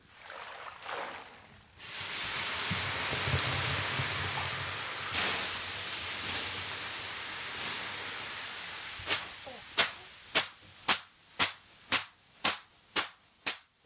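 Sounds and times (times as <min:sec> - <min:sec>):
steam from water poured on a sauna stove hissing: 0:01.8 - 0:10.8
bundle of birch twigs slapping in a wood-heated Finnish sauna: 0:09.1 - 0:13.6.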